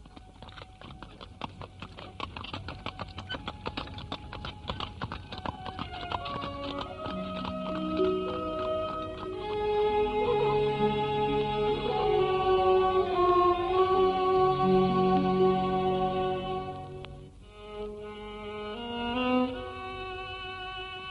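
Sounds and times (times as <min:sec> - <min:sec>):
horse-drawn carriage hooves clip-clopping on a road: 0:00.0 - 0:17.3
tonal musical backdrop: 0:05.2 - 0:21.0.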